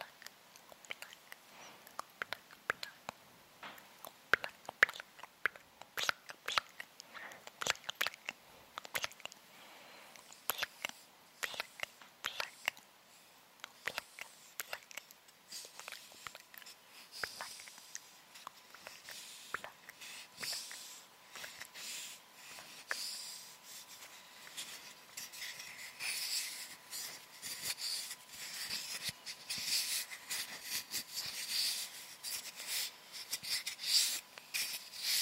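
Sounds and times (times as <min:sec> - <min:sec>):
hissy lip noises: 0:00.0 - 0:03.2, 0:03.8 - 0:35.2
wet mouth clicks and smacks: 0:00.0 - 0:03.2, 0:03.8 - 0:09.4, 0:10.2 - 0:12.9, 0:13.6 - 0:20.7.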